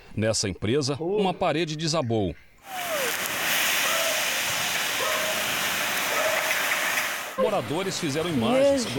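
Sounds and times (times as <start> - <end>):
speech: 0.2 - 2.8, 7.4 - 8.9
rushing floodwater torrent: 2.6 - 7.8.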